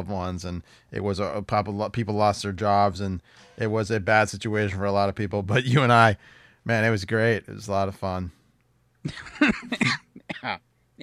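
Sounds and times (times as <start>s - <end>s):
speech: 0.0s - 8.4s, 9.0s - 11.0s
person coughing: 9.1s - 10.6s.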